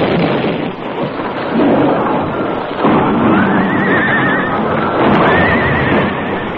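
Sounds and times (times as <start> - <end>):
explosion blast collapsing a bridge: 0.0 - 6.5
frightened horses whinnying: 1.6 - 6.5.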